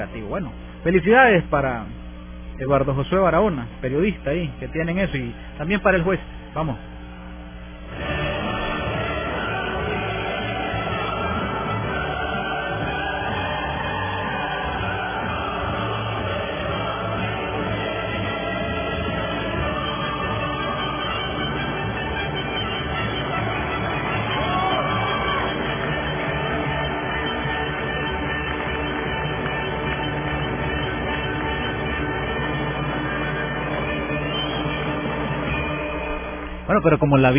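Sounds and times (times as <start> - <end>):
speech: 0.0 - 2.0, 2.6 - 6.9, 36.8 - 37.3
large crowd applauding and cheering: 6.6 - 37.3
whoops and shouts from the crowd: 23.9 - 27.0.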